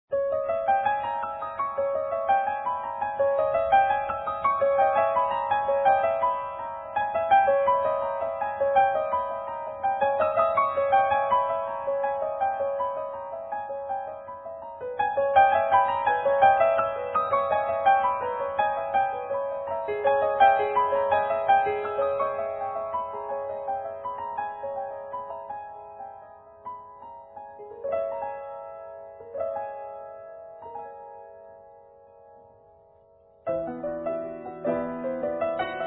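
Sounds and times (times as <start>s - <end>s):
grand piano playing forte piano: 0.1s - 35.8s.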